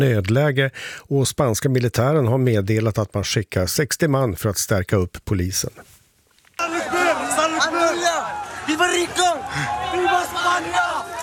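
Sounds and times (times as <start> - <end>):
speech: 0.0 - 6.0
large crowd shouting and yelling while running toward a hill: 6.6 - 11.2.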